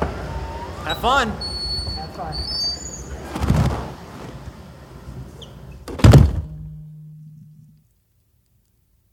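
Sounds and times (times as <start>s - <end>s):
speech: 0.9s - 1.5s, 2.2s - 2.7s
faint low hum: 2.1s - 9.1s
heavy-duty reinforced doors of an anechoic chamber slamming: 5.9s - 6.8s.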